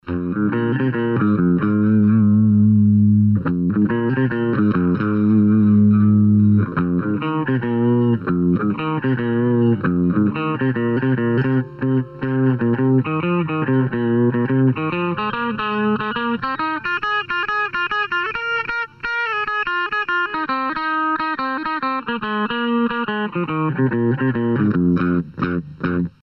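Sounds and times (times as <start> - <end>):
clean guitar through compressor pedal: 0.0 - 26.2.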